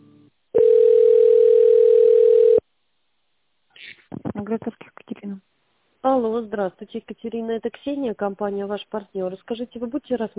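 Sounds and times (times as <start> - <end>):
telephone ringback tone while a call is transferred: 0.6 - 2.6
speech: 4.5 - 10.3.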